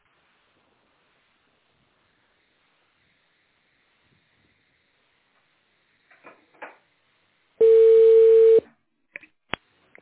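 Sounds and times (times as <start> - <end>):
steady mid-pitched telephone tone after a dropped call: 7.6 - 8.6.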